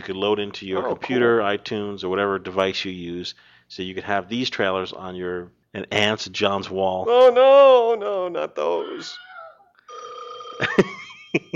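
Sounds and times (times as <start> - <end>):
speech: 0.0 - 9.3, 10.6 - 11.5
electronic telephone ring tone: 9.9 - 11.2.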